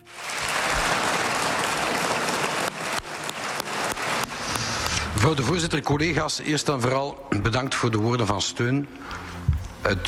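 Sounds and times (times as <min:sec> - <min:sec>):
applause in a parliament chamber: 0:00.0 - 0:05.5
speech: 0:05.2 - 0:10.0.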